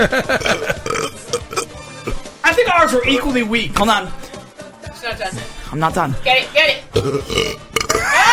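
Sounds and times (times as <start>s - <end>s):
speech: 0.0s - 0.7s, 2.9s - 4.2s, 5.0s - 7.6s
loud burp: 0.3s - 2.2s, 6.9s - 8.2s.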